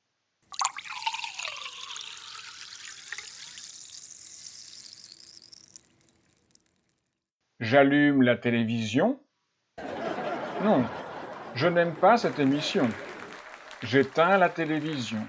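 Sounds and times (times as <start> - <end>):
water pouring into a drinking glass: 0.5 - 7.0
speech: 7.6 - 9.2, 10.6 - 11.0, 11.6 - 13.1, 13.8 - 15.2
laughter: 9.8 - 15.1.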